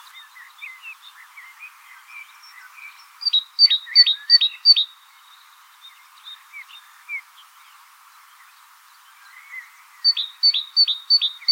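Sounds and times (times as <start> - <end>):
great tit Parus major calling: 3.2 - 4.9, 10.1 - 11.5.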